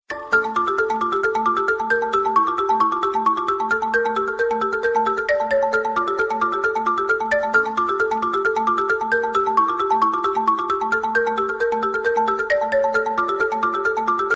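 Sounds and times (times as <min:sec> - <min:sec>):
xylophone ringtone on iPhone 6s: 0:00.1 - 0:14.3.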